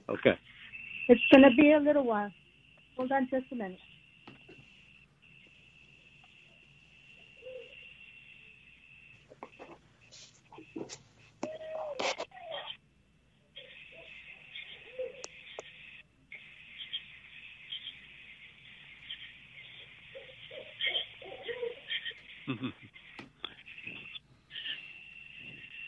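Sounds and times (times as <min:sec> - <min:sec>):
speech: 0:00.1 - 0:02.4, 0:03.0 - 0:03.9, 0:22.5 - 0:23.0
steady high insect drone: 0:00.1 - 0:25.8
barred owl hooting: 0:00.5 - 0:01.8, 0:06.3 - 0:09.7, 0:11.5 - 0:12.8, 0:13.6 - 0:25.8.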